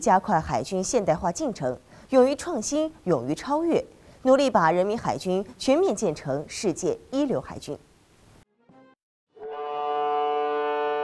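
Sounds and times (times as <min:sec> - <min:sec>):
speech: 0:00.0 - 0:07.9
warship horn blowing as ship departs: 0:09.4 - 0:11.0.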